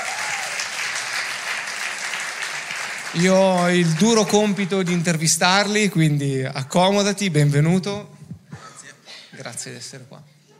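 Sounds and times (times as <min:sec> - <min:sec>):
audience applause welcoming a guest onto a stage: 0:00.0 - 0:05.5
speech: 0:03.1 - 0:08.2, 0:09.5 - 0:10.4.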